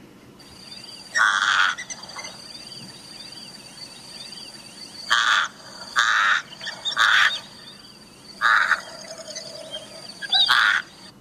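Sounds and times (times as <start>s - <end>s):
faint outdoor background: 0.0s - 11.2s
crows cawing: 1.2s - 1.9s, 5.1s - 7.6s, 8.4s - 9.1s, 10.4s - 11.1s.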